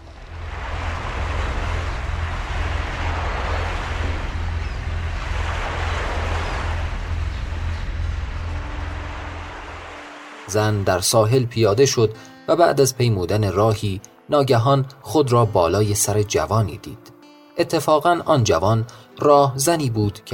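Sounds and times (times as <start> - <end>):
low constant rumble: 0.0 - 10.9
gentle sea waves washing: 0.0 - 11.2
speech: 10.5 - 20.3.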